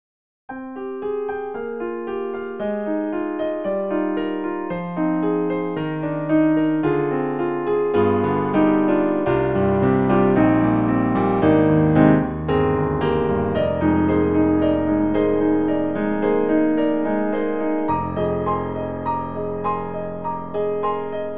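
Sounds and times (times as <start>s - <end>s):
jazzy warm grand piano: 0.5s - 21.3s.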